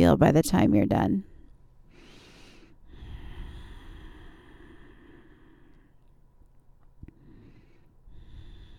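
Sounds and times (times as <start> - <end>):
speech: 0.0 - 1.3
slow breathing in and out through the nose during a yoga routine: 1.9 - 6.0, 7.1 - 8.7.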